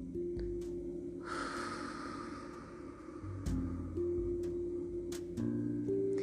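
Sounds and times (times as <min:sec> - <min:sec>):
soft sustained music tones: 0:00.0 - 0:06.2
long steady breath pushed out through the mouth: 0:01.2 - 0:03.4.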